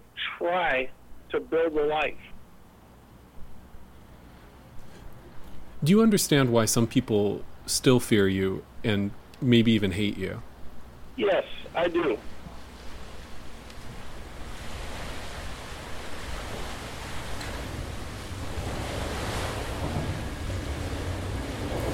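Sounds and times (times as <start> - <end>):
speech: 0.4 - 2.3, 5.8 - 10.5, 11.2 - 12.3
water lapping and surging along a shoreline at a ferry dock boat launch: 11.9 - 21.8.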